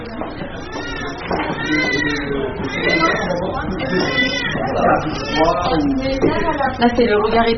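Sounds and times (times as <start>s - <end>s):
several newborn babies crying in a hospital maternity nursery: 0.6s - 6.0s
speech: 4.8s - 7.5s.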